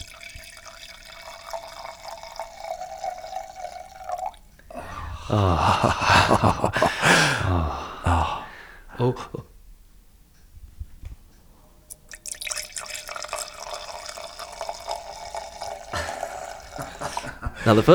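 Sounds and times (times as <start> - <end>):
wine glugging from a bottle into a glass: 0.0 - 7.4, 12.0 - 17.8
quiet steady room hum: 0.0 - 17.9
laughter: 4.8 - 9.4, 15.9 - 17.9
speech: 5.3 - 8.3, 9.0 - 9.5, 17.7 - 17.9.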